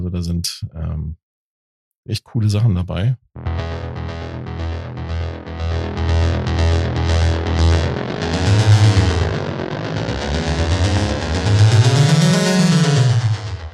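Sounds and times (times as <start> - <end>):
speech: 0.1 - 1.2, 2.0 - 4.2
synthesizer app preset buzzy pulses on an iPhone 12 touch keyboard: 3.4 - 13.7.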